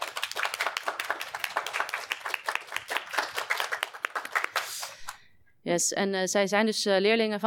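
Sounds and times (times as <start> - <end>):
audience applause: 0.0 - 5.2
speech: 5.7 - 7.4.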